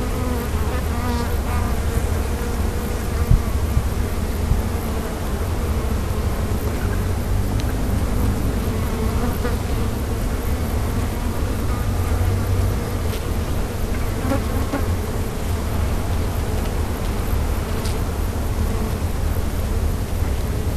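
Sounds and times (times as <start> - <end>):
bees buzzing: 0.0 - 20.7.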